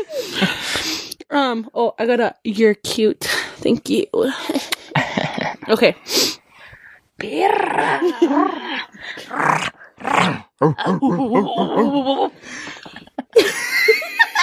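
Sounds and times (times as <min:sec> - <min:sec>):
speech: 0:00.0 - 0:04.6, 0:05.2 - 0:06.3, 0:07.2 - 0:14.3
laughter: 0:04.5 - 0:05.7, 0:10.8 - 0:14.4
dog growling and barking: 0:09.3 - 0:12.3.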